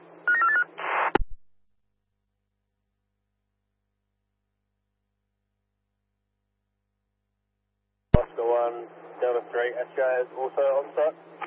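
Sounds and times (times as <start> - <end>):
telephone dialing beeps: 0.3 - 0.7
speech: 8.7 - 11.4.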